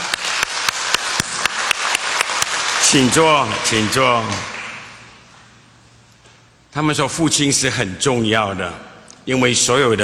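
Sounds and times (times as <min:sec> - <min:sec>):
crowd applauding at a church service: 0:00.0 - 0:05.2
speech: 0:02.9 - 0:04.5, 0:06.8 - 0:10.0.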